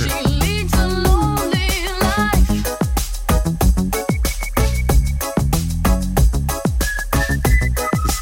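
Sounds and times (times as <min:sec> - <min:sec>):
full pop track with a steady thumping beat: 0:00.0 - 0:08.2
bright whistled melody in a pop song: 0:03.9 - 0:08.2.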